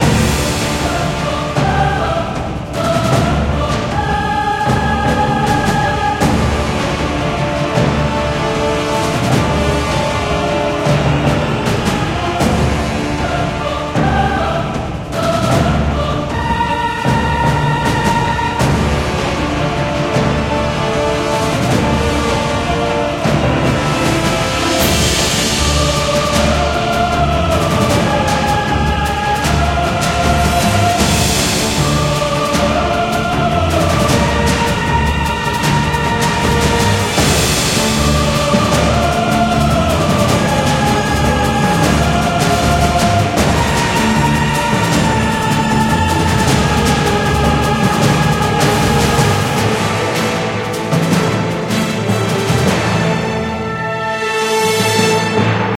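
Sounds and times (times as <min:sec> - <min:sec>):
fight music: 0:00.0 - 0:55.7.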